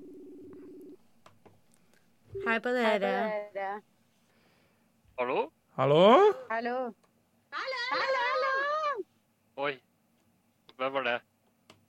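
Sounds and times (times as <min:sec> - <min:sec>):
telephone dial tone: 0:00.0 - 0:01.0
speech: 0:02.4 - 0:03.9, 0:05.2 - 0:08.1, 0:09.6 - 0:09.9, 0:10.8 - 0:11.3.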